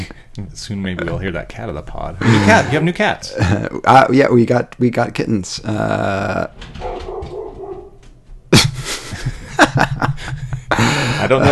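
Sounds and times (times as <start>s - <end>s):
speech: 0.4s - 6.9s, 11.2s - 11.5s
laughter: 2.2s - 3.8s, 8.6s - 11.5s
dog barking at someone passing by outside: 6.8s - 8.0s.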